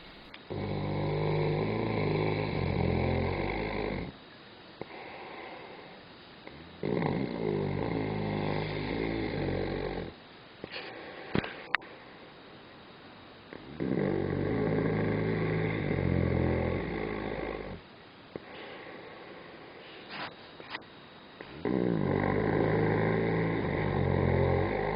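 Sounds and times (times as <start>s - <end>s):
hibernating bear snoring: 0.0s - 4.2s, 6.5s - 10.2s, 13.5s - 17.8s, 21.4s - 24.9s.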